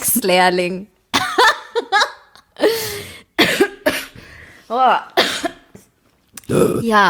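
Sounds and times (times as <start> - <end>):
speech: 0.2 - 0.9, 4.7 - 5.2, 6.5 - 7.0
person coughing: 2.6 - 4.2, 5.2 - 5.7
person burping: 6.4 - 7.0.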